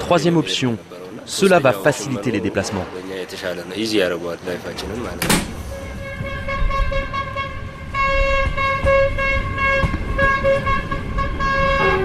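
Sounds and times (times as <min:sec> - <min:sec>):
speech: 0:00.1 - 0:05.6
horn of a new passenger train blaring: 0:05.6 - 0:12.0.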